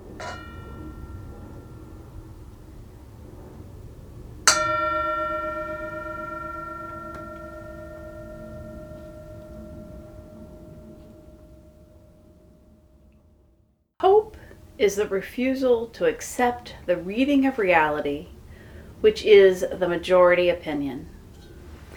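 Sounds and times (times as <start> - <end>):
bell struck with a bright ringing tone: 0.0 - 2.6, 4.5 - 12.2
low steady rumble: 0.0 - 21.9
speech: 0.2 - 0.5, 14.8 - 18.4, 19.0 - 21.1.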